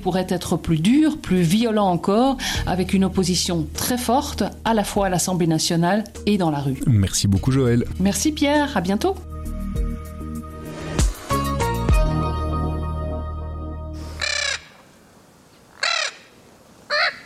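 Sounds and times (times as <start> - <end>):
speech: 0.0 - 9.3
tonal music: 9.2 - 14.0
Spix's macaw screeching: 14.0 - 14.8, 15.7 - 16.3, 16.9 - 17.2.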